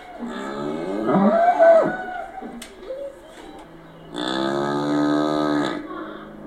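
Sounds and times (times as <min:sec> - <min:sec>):
low background hum: 0:00.0 - 0:06.4
cows lowing in a stable: 0:00.2 - 0:02.3, 0:04.1 - 0:05.9.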